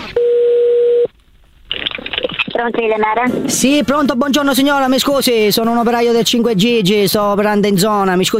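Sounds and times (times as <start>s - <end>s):
telephone line tone while a call is being placed: 0.1s - 1.1s
speech: 2.6s - 8.3s.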